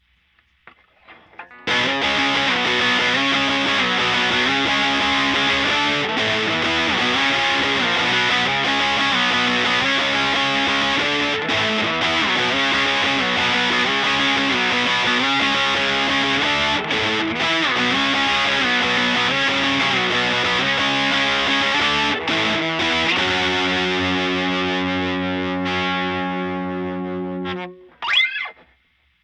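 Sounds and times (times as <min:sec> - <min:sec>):
Fender Twin Reverb guitar amplifier distorted: 0:00.0 - 0:29.2.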